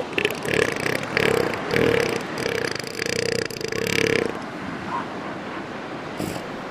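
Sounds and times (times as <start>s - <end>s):
elephant seal growling: 0.1s - 4.5s, 6.2s - 6.5s.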